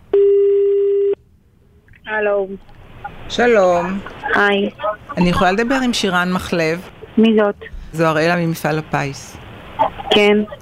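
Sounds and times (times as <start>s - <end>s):
telephone tone as a call is being placed: 0.1s - 1.2s
speech: 2.1s - 9.4s, 10.2s - 10.6s.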